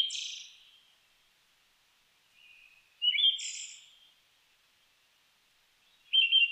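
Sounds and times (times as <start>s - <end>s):
Siberian thrush song: 0.0s - 1.0s, 2.3s - 4.2s, 5.8s - 6.5s.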